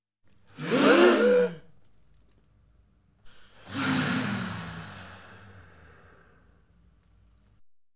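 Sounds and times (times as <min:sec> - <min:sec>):
group of adults inhaling and exhaling: 0:00.5 - 0:01.6, 0:03.3 - 0:06.7.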